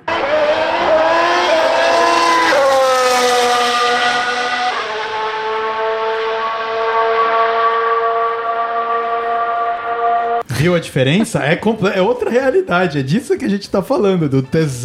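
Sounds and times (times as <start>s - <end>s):
Formula 1 hybrid V6 engine screaming at each upshift: 0.0s - 10.4s
speech: 10.6s - 14.8s.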